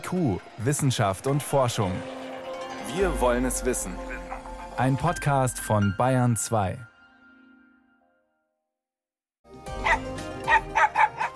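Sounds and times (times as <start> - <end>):
speech: 0.1 - 2.2, 2.9 - 4.2, 4.8 - 6.9
dog barking: 9.8 - 11.3.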